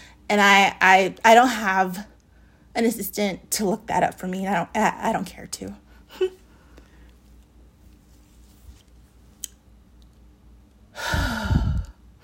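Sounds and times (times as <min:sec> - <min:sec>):
speech: 0:00.3 - 0:02.1, 0:02.8 - 0:06.4
person heavy deep sighing exhale: 0:11.0 - 0:12.0.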